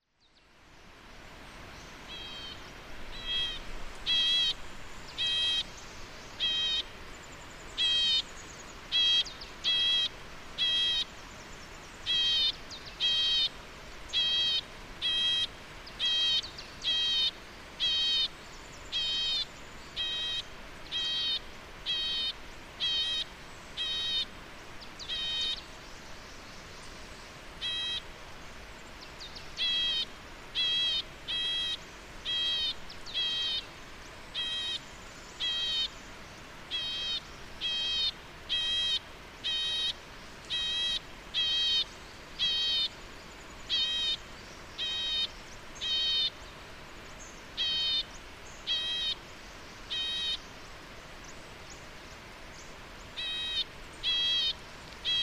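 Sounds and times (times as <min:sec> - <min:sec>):
white-cheeked nuthatch Sitta leucopsis call: 0:02.1 - 0:11.2, 0:12.0 - 0:24.3, 0:25.0 - 0:25.7, 0:27.6 - 0:28.1, 0:29.3 - 0:33.7, 0:34.3 - 0:36.0, 0:36.7 - 0:43.0, 0:43.6 - 0:46.4, 0:47.2 - 0:49.2, 0:49.8 - 0:50.5, 0:53.1 - 0:55.2.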